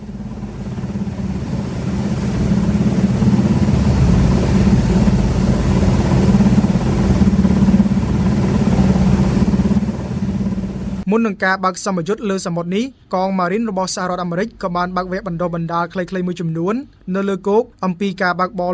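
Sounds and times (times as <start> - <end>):
military helicopter engine drone: 0.0 - 11.1
speech: 11.1 - 18.7.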